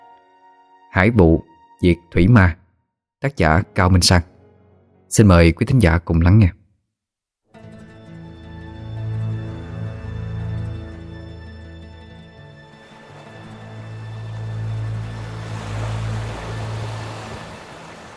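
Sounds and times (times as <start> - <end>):
speech: 1.0 - 2.6, 3.2 - 4.3, 5.1 - 6.6
sea waves washing around a small boat on open water at dusk: 12.6 - 18.1.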